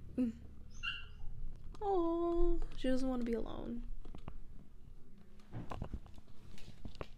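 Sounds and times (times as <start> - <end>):
low hum: 0.0 - 7.1
speech: 0.2 - 0.5, 1.8 - 4.0
dog whimpering: 0.7 - 1.3.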